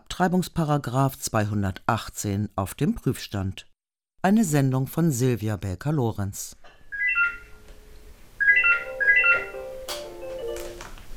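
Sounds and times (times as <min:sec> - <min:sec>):
speech: 0:00.2 - 0:06.8
telephone at a church counselling service office in Berlin ringing electronically: 0:06.9 - 0:07.7, 0:08.4 - 0:10.8.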